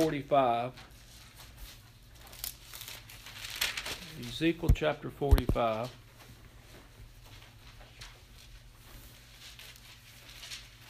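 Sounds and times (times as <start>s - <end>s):
speech: 0.0s - 0.9s, 4.2s - 6.0s
thin paper Bible pages being turned: 0.0s - 6.0s, 7.0s - 10.8s.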